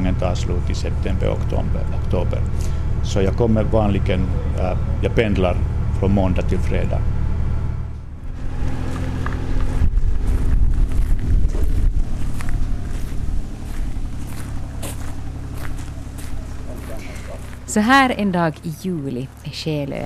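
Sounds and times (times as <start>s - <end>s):
tractor engine rumbling outdoors: 0.0s - 20.0s
speech: 0.2s - 7.2s, 17.7s - 20.0s
wind buffeting the microphone: 8.1s - 18.6s.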